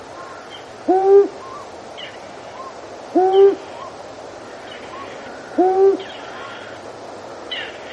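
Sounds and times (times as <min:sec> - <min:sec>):
long-eared owl hooting: 0:00.3 - 0:01.6, 0:02.6 - 0:03.9, 0:04.9 - 0:06.8.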